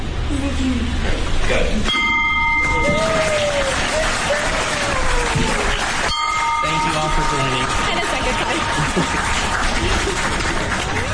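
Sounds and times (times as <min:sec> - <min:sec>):
speech: 0:00.4 - 0:02.0
indistinct voices: 0:00.7 - 0:11.1
crowd noise: 0:01.8 - 0:11.1
ceremonial bell rung to close the day's business: 0:01.9 - 0:03.6, 0:06.0 - 0:10.0
laughter: 0:02.9 - 0:06.1, 0:07.1 - 0:11.1.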